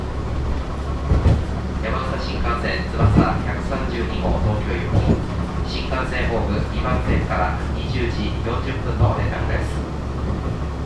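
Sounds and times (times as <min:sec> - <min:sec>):
KiHa 101 diesel railcar engine and wheel noise heard from inside the cabin: 0:00.0 - 0:10.8
thumps: 0:03.0 - 0:03.5, 0:04.2 - 0:05.4
speech: 0:05.7 - 0:09.8.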